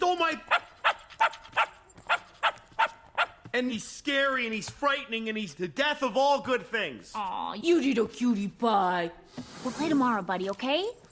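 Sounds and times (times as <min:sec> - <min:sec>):
dog barking: 0:00.5 - 0:03.4
speech: 0:03.6 - 0:11.0.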